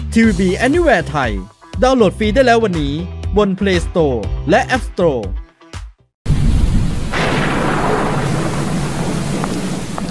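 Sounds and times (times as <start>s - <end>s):
speech: 0.2s - 5.4s
deep rumble of thunder: 6.3s - 10.0s
heavy rain pouring: 6.3s - 10.0s.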